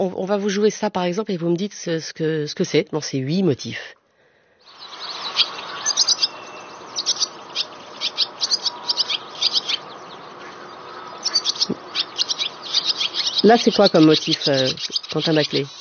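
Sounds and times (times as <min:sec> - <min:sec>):
speech: 0:00.0 - 0:04.0, 0:13.4 - 0:15.7
barn swallow singing: 0:04.5 - 0:15.7.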